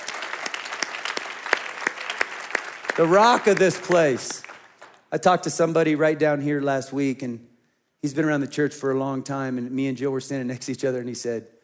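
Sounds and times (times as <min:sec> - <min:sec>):
audience applause: 0:00.0 - 0:05.0
speech: 0:03.0 - 0:04.4, 0:05.1 - 0:11.6.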